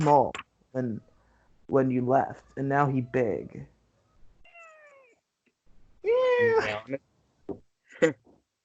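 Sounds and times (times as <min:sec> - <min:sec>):
speech: 0:00.0 - 0:01.1, 0:01.7 - 0:03.7, 0:06.0 - 0:08.2
large cat meowing toward a camera: 0:04.4 - 0:05.2.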